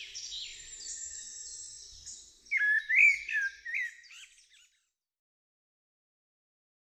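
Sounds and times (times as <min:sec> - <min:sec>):
common blackbird singing a fluted warble: 0:00.0 - 0:04.8.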